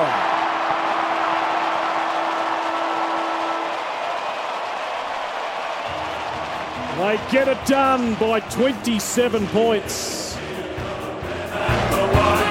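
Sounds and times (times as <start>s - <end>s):
final siren blaring at football stadium: 0.0s - 10.2s
stadium crowd cheering: 0.0s - 12.5s
speech: 7.0s - 10.2s.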